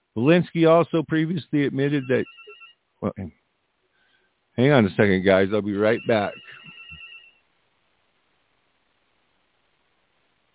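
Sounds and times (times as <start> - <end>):
speech: 0.2 - 2.4, 3.0 - 3.4, 4.6 - 6.7
telephone electronic ringtone for a solicitation call: 2.0 - 2.8, 5.8 - 7.4.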